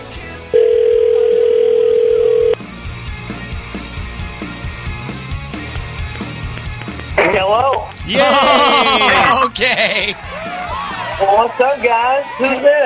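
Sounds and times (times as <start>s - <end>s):
telephone ringback tone of an outgoing call: 0.6s - 2.6s
laughter: 8.0s - 11.5s
speech: 11.2s - 12.8s.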